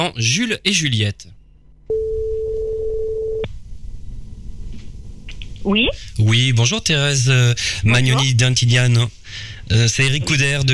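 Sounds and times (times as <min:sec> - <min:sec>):
speech: 0:00.0 - 0:02.0, 0:05.6 - 0:10.7
telephone tone as a call is dialed: 0:01.9 - 0:03.5.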